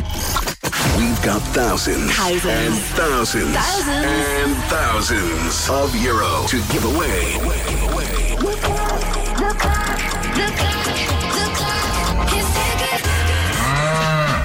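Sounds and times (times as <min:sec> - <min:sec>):
busy loud backing music: 0:00.8 - 0:14.2
speech: 0:01.0 - 0:13.1
cow mooing low and drawn-out: 0:13.5 - 0:14.4.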